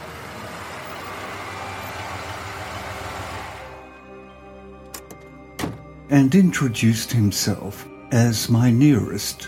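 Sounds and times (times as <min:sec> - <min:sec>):
truck engine roaring and idling: 0:00.0 - 0:07.5
speech: 0:06.1 - 0:09.4.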